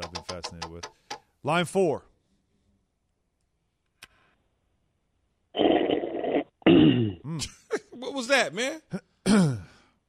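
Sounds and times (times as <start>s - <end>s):
speech: 1.4s - 2.1s, 7.4s - 7.6s, 8.2s - 9.5s
man clearing throat over a phone line: 6.6s - 8.0s, 8.9s - 9.8s.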